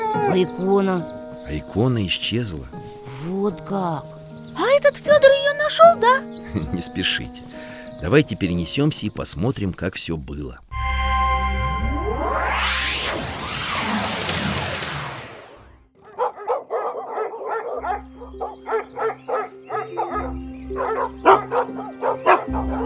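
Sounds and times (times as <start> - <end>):
speech: 0.2 - 4.2, 4.8 - 10.7
steady low drone: 10.8 - 15.7
swirling whoosh: 11.7 - 15.7
hunting dogs barking in a forest: 16.0 - 22.8.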